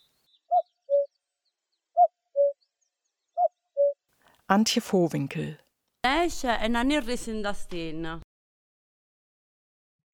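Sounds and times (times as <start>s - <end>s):
cuckoo calling: 0.0s - 1.2s, 1.9s - 4.0s
speech: 4.5s - 5.6s, 6.2s - 8.2s.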